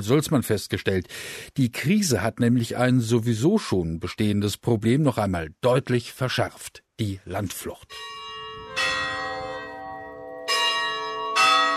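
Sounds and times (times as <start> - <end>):
speech: 0.0 - 8.2
church bell ringing: 7.9 - 11.7.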